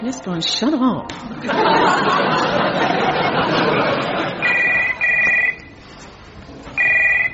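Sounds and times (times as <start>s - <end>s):
speech: 0.1s - 4.4s
people laughing: 1.3s - 5.0s
telephone ringing in loud electronic bursts: 4.3s - 5.8s, 6.7s - 7.3s.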